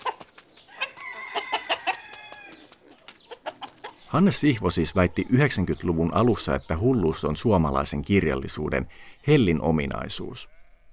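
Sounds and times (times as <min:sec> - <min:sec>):
chicken clucking and squawking: 0:00.0 - 0:04.1
speech: 0:04.1 - 0:10.6.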